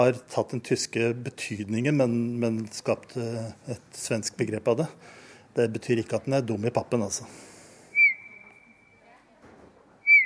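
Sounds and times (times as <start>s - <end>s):
speech: 0.0s - 7.5s
faint murmur: 4.8s - 10.2s
Eurasian bullfinch fluting whistle call: 7.9s - 9.0s, 10.0s - 10.2s.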